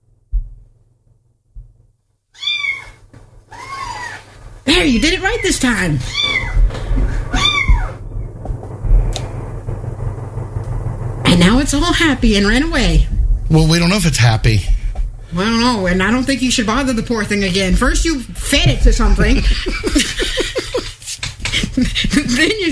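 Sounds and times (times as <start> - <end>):
low rumble: 0.0 - 21.0
cat meowing: 2.4 - 4.3, 6.0 - 8.0
speech: 4.7 - 6.4, 11.4 - 14.7, 15.3 - 20.5, 21.8 - 22.7
laughter: 19.2 - 22.7.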